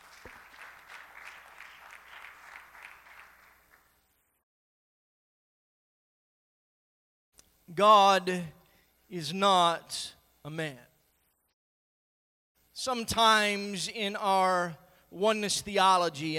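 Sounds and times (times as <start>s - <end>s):
room full of people applauding: 0.0s - 4.1s
speech: 7.7s - 10.9s, 12.8s - 16.3s.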